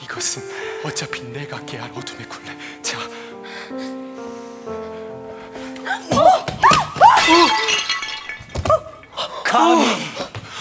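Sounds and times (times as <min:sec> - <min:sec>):
speech: 0:00.2 - 0:04.2, 0:09.6 - 0:10.0
ceramic pot smashing: 0:06.5 - 0:09.4
clatter of ceramic shards: 0:07.2 - 0:09.4.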